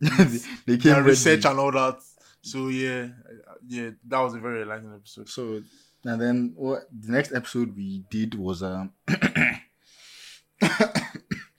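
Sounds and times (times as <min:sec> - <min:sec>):
speech: 0:00.0 - 0:09.5
harsh coughing: 0:09.1 - 0:09.7, 0:10.6 - 0:11.5.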